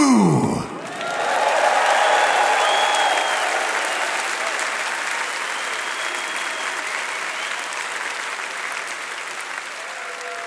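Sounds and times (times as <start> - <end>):
audience booing: 0.0 - 4.8
large audience applauding: 0.4 - 10.4.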